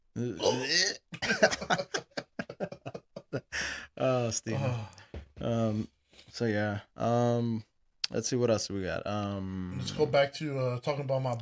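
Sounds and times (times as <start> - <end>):
person gagging with a throaty retch: 0.2 - 1.7
speech: 0.2 - 1.8, 4.4 - 7.2, 8.2 - 11.4.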